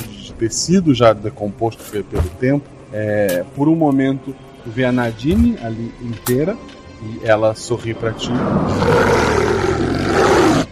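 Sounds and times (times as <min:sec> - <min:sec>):
speech: 0:00.4 - 0:09.2
wolf snarling roar: 0:08.4 - 0:10.6.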